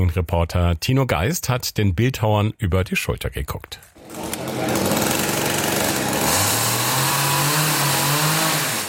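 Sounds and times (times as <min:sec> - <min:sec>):
speech: 0:00.0 - 0:03.9
motor saw sawing rough contours into thick oak trunks: 0:04.0 - 0:08.8.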